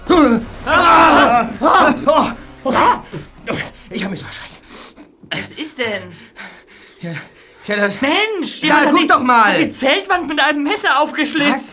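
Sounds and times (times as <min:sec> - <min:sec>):
loud strained human screams in the night: 0:00.0 - 0:03.6
speech: 0:00.1 - 0:00.8, 0:07.0 - 0:11.7.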